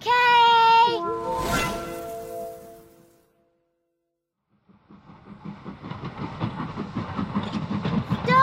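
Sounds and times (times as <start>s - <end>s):
train horn-like tone: 0.7s - 3.4s
train rhythmic rumbling clatter on the tracks: 4.6s - 8.4s.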